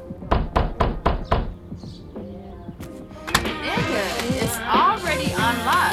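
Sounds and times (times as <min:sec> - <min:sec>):
noise: 0:00.0 - 0:05.9
pounding knocks on a door: 0:00.2 - 0:02.0
shuffling: 0:01.8 - 0:05.9.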